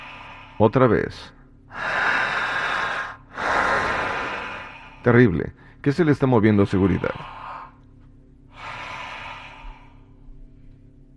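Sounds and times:
forceful deep breathing during a guided breathing exercise: 0.0s - 1.1s, 1.7s - 5.8s, 6.6s - 7.8s, 8.5s - 10.7s
low steady hum: 0.0s - 11.1s
speech: 0.6s - 1.4s, 5.0s - 7.4s.

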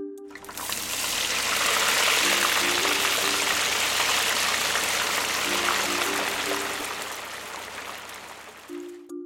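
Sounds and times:
something frying and sizzling: 0.4s - 8.9s.

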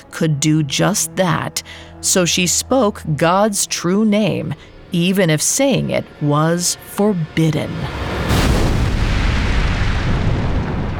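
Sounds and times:
speech: 0.2s - 8.2s
roaring fiery blast of a white-hot fireball shooting down from the sky: 7.9s - 10.9s.

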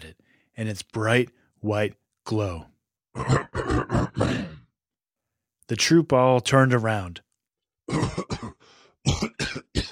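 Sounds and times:
speech: 0.6s - 4.5s, 5.7s - 7.2s
king coughing harshly in a fit of uncontrollable coughing: 3.1s - 4.7s, 7.9s - 9.9s
raspy breath: 8.6s - 9.0s.

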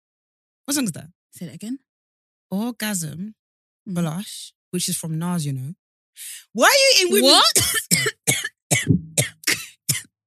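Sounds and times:
speech: 0.7s - 1.9s, 2.5s - 9.2s
person coughing: 7.5s - 10.1s.

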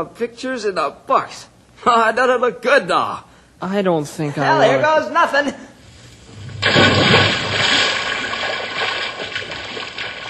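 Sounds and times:
speech: 0.0s - 5.7s
loud splash of person jumping into a swimming hole: 6.3s - 10.2s
churning sloshing water: 6.4s - 10.2s.

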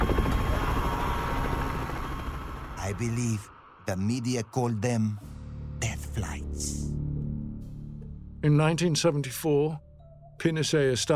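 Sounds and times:
helicopter flying with rotor chop and engine whine: 0.0s - 4.1s
speech: 2.9s - 5.3s, 6.2s - 7.0s, 8.4s - 11.1s.

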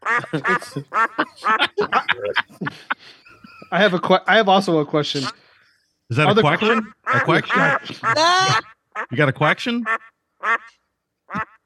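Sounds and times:
duck quacking: 0.0s - 2.3s, 5.1s - 5.4s, 6.3s - 9.2s, 9.8s - 11.6s
laughter: 0.0s - 5.4s, 6.1s - 8.7s
speech: 0.2s - 5.4s, 6.1s - 10.8s.

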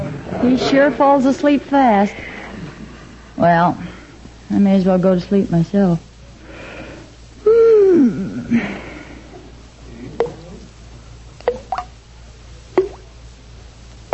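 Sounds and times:
speech: 0.4s - 2.4s, 3.4s - 3.9s, 4.5s - 6.1s, 8.0s - 8.8s
breathy wheezing sigh: 6.4s - 9.4s
bathroom faucet dripping: 11.4s - 11.9s, 12.8s - 13.1s.

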